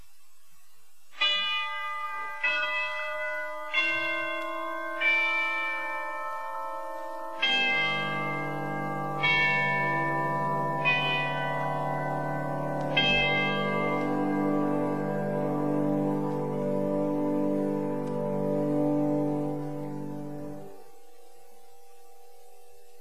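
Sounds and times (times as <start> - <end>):
sustained pipe organ chord: 0.0 - 22.9
cathedral chimes on a pipe organ ringing: 1.2 - 16.8.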